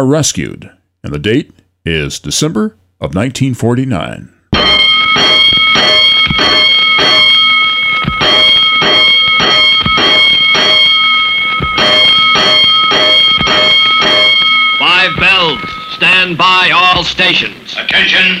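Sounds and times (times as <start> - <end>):
speech: 0.0 - 4.4, 15.0 - 18.3
fire alarm bells ringing for a five-alarm fire: 4.6 - 17.6.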